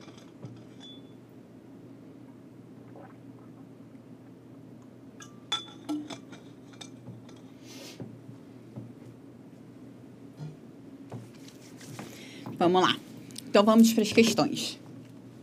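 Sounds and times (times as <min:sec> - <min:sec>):
light clinks of a water glass: 0:00.8 - 0:01.2
speech: 0:12.6 - 0:14.8.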